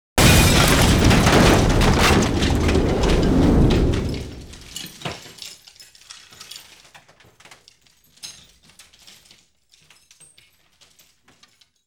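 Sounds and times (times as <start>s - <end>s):
large foley impacts: 0.2s - 5.0s.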